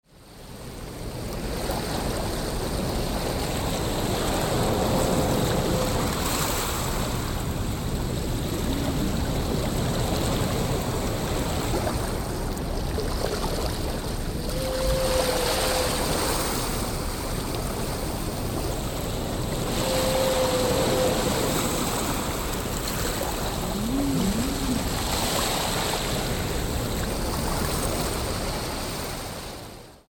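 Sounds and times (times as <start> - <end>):
ocean waves: 0.4 - 29.9
whales calling: 3.9 - 7.4, 14.4 - 17.2, 19.0 - 26.3.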